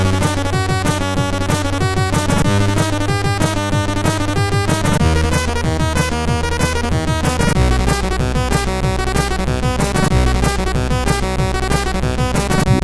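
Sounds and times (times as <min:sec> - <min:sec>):
CSG8580 sound chip intro music: 0:00.1 - 0:12.7.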